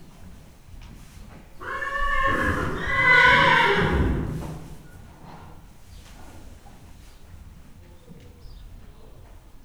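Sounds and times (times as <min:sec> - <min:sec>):
horse neighing in Hortobágy National Park: 0:01.6 - 0:04.6.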